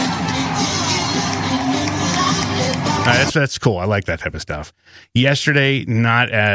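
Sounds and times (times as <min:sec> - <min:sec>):
large stadium crowd of fans singing together: 0:00.0 - 0:03.3
speech: 0:03.1 - 0:06.5.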